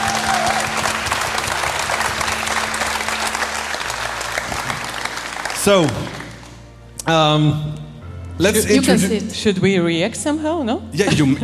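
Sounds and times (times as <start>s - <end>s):
person cheering: 0.0s - 0.9s
crowd applauding in a standing ovation: 0.0s - 6.7s
speech: 5.6s - 6.2s, 7.1s - 7.8s, 8.4s - 11.4s.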